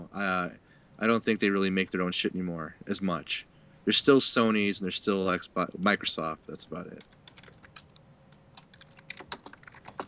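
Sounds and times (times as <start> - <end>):
faint steady hum: 0.0 - 10.0
speech: 0.2 - 7.2
fast typing on computer keyboards: 6.9 - 8.0, 8.6 - 10.0.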